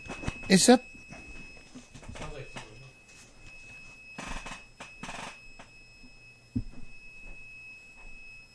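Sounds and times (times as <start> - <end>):
high-pitched electronic alarm tone in a studio: 0.0 - 8.5
speech: 0.5 - 0.9.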